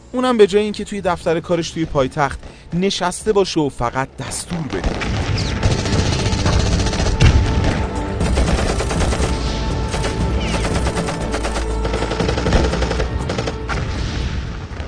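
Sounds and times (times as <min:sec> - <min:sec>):
speech: 0:00.1 - 0:05.5
sustained automatic machine gun fire: 0:04.8 - 0:13.7.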